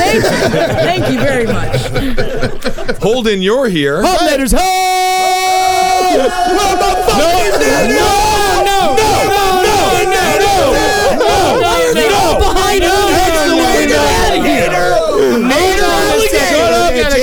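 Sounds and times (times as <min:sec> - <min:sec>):
laughter: 0:00.0 - 0:03.4, 0:05.3 - 0:17.2
speech: 0:00.1 - 0:05.1, 0:06.1 - 0:08.3
large crowd shouting chant-like cries: 0:04.1 - 0:17.2.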